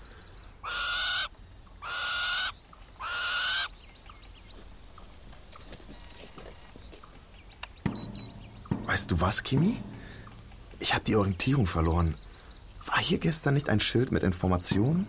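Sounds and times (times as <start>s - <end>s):
birds calling: 0.0s - 15.0s
brief sharp knock: 7.8s - 10.8s
speech: 9.0s - 9.9s, 10.8s - 12.2s, 13.0s - 15.0s.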